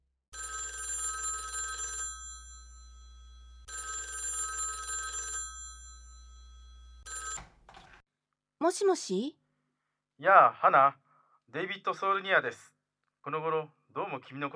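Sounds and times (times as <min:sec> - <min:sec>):
telephone ringing: 0:00.4 - 0:08.0
speech: 0:08.6 - 0:09.4, 0:10.2 - 0:14.5.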